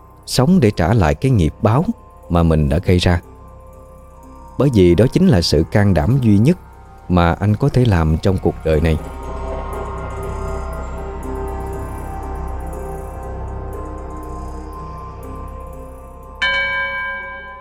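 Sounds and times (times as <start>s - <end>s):
speech: 0.3s - 3.3s, 4.6s - 9.4s
temple bell ringing by a pagoda gate lined with willow trees: 4.4s - 17.6s.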